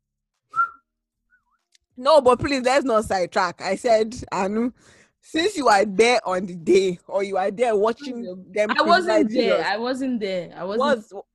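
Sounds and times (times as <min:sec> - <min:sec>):
short whistle: 0:00.5 - 0:01.6
speech: 0:02.0 - 0:11.3.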